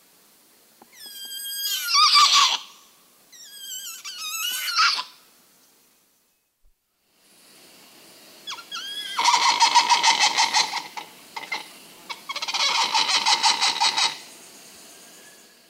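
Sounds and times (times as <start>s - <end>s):
muriqui chirps: 0.9s - 5.2s, 8.5s - 14.3s
muriqui call of rapid rhythmic harsh pulses: 8.5s - 14.5s.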